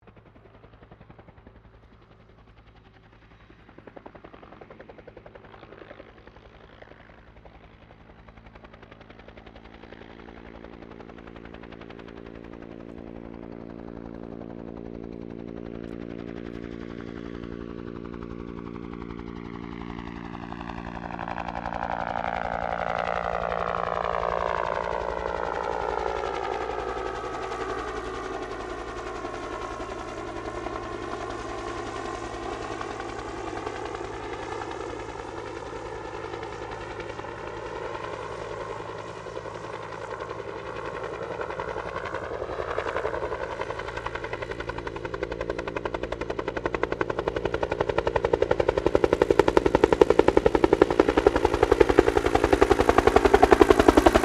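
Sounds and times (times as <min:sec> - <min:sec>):
Bell UH1 Iroquois helicopter landing and shutting down: 0:00.0 - 0:54.2.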